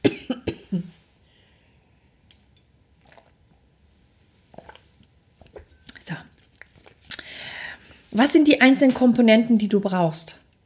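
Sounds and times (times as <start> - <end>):
person sipping and swallowing a drink: 2.2 - 3.7, 4.4 - 8.1
small mouth clicks: 4.5 - 7.3
speech: 8.2 - 10.4.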